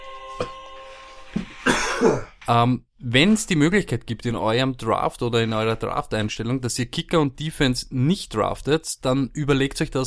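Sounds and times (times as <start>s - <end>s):
person coughing harshly: 1.6s - 2.4s
speech: 2.0s - 10.0s.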